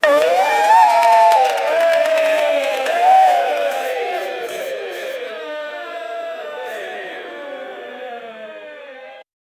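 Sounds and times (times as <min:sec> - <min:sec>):
game show audience cheering: 0:00.0 - 0:05.4.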